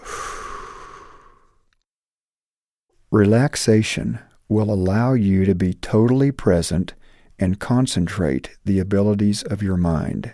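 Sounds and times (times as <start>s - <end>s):
deep breath exhaled during a relaxation exercise: 0.0s - 1.6s
speech: 3.1s - 10.3s.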